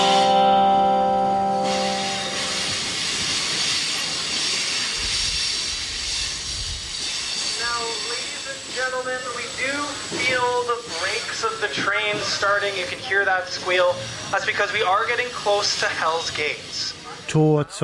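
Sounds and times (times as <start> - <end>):
sustained tonal horn-like blare: 0.0 - 2.8
train rumbling along the rails with a broad hiss: 0.0 - 17.3
speech: 12.4 - 17.8.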